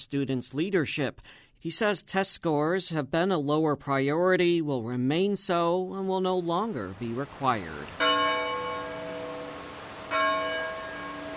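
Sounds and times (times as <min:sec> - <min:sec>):
speech: 0:00.0 - 0:08.1
college bells ringing to mark class periods: 0:08.0 - 0:11.3.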